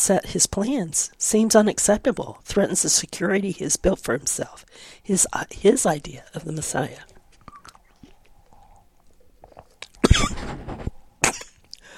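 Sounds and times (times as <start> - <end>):
speech: 0.0 - 7.1
person breathing: 4.7 - 5.1, 11.8 - 11.9
person coughing in harsh fits: 10.0 - 10.6, 11.2 - 11.6.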